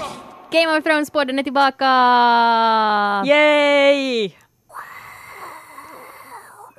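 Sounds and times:
speech: 0.5s - 4.4s
person exhaling a breathy hiss to imitate a stadium crowd roar: 4.7s - 6.7s.

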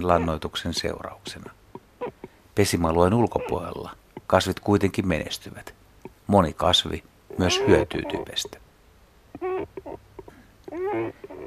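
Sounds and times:
speech: 0.0s - 1.6s, 2.6s - 8.6s, 9.4s - 10.0s
great cormorant giving drawn-out calls and short notes: 2.0s - 2.4s, 7.3s - 8.4s, 9.3s - 11.4s.

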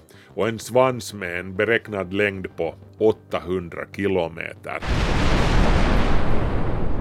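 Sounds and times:
speech: 0.4s - 5.2s
explosion sound effect with deep broadband rumbling roar: 4.8s - 6.9s.

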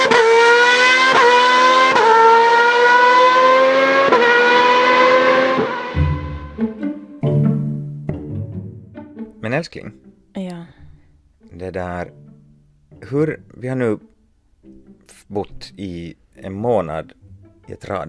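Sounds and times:
Formula 1 car engine whine at high revs: 0.0s - 7.2s
speech: 9.6s - 10.8s, 11.5s - 12.2s, 13.0s - 18.0s.

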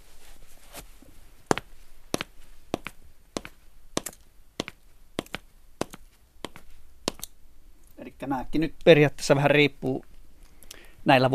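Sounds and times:
leather-soled dress shoes clacking on a hard floor: 1.5s - 7.3s
speech: 8.2s - 10.1s, 11.1s - 11.3s.

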